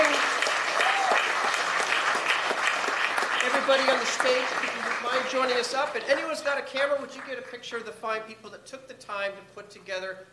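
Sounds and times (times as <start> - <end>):
audience applauding at an art and story awards event: 0.0 - 6.3
speech: 3.7 - 10.3.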